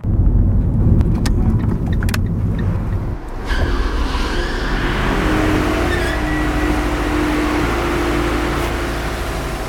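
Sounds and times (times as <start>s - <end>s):
car engine rumbling at a multi-storey car park barrier: 0.0s - 9.6s.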